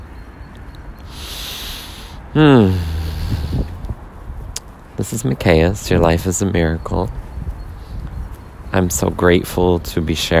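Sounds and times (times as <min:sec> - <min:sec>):
deep intentional breath at the start of a practice session: 0:01.0 - 0:03.8
speech: 0:02.3 - 0:02.9, 0:05.1 - 0:07.2, 0:08.7 - 0:10.3.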